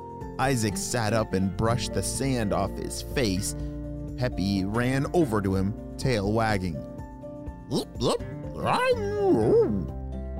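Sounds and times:
speech: 0.4s - 6.9s, 7.7s - 10.0s
voice imitating a small dog yipping and yelping: 7.7s - 9.9s.

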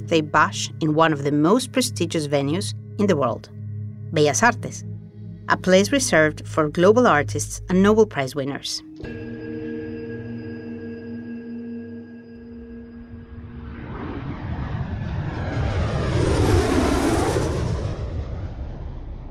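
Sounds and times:
speech: 0.0s - 4.9s, 5.5s - 9.4s
small private plane landing: 9.0s - 19.2s.

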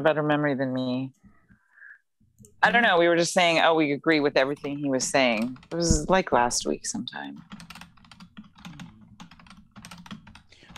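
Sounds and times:
speech: 0.0s - 1.2s, 2.6s - 7.7s
loud typing on a computer keyboard: 4.4s - 10.7s.

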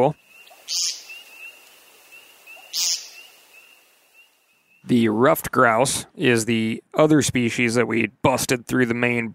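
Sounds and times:
speech: 0.0s - 1.0s, 4.9s - 9.3s
harsh high-pitched bird calls: 0.0s - 5.1s.

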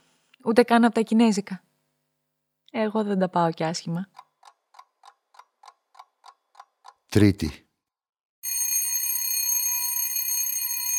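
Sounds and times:
speech: 0.4s - 1.7s, 2.7s - 4.2s, 7.1s - 7.6s
electric doorbell of a neighbouring apartment buzzing: 8.4s - 10.9s.

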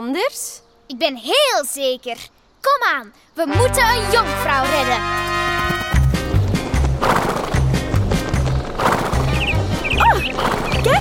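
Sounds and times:
speech: 0.0s - 5.3s
horse hooves galloping hard: 5.0s - 10.9s
horse snorting and whinnying: 7.0s - 7.6s, 8.8s - 9.4s.

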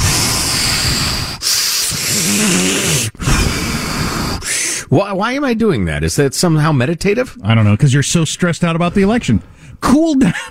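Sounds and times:
deep breathing in and out: 0.0s - 4.9s, 8.9s - 9.8s
speech: 4.9s - 10.4s.

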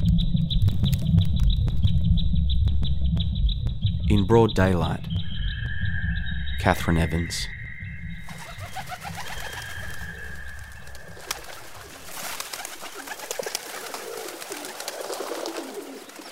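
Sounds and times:
steady outdoor hum: 0.0s - 12.7s
scattered higher chirps: 0.2s - 12.8s
speech: 4.1s - 5.1s, 6.6s - 7.6s
pigeons cooing: 8.2s - 16.3s.

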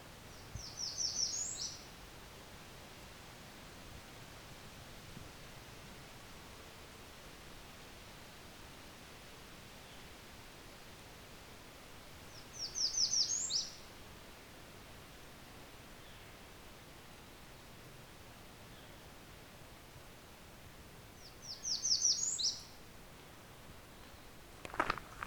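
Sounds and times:
soft hiss: 0.0s - 25.2s
Blackburnian warbler singing song variant with a downward inflection: 0.3s - 1.9s, 12.3s - 13.8s, 21.2s - 22.8s.

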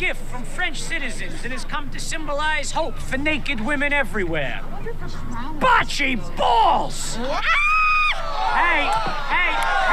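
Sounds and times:
speech: 0.0s - 7.7s, 8.3s - 9.9s
woman screaming: 7.2s - 8.2s
crowd shouting and yelling: 7.2s - 9.9s.

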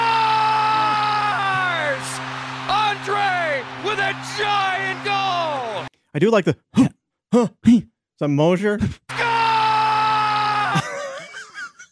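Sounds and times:
grown man screaming at the top of his lungs: 0.0s - 5.8s, 9.1s - 11.0s
speech: 6.2s - 9.1s
laughter: 10.6s - 11.9s.

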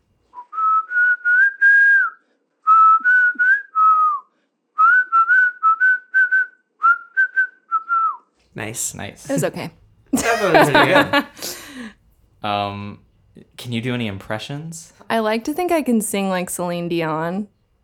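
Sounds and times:
person whistling a tune: 0.4s - 8.3s
speech: 8.6s - 11.6s, 12.4s - 13.0s, 13.6s - 17.6s
laughter: 10.2s - 11.9s.

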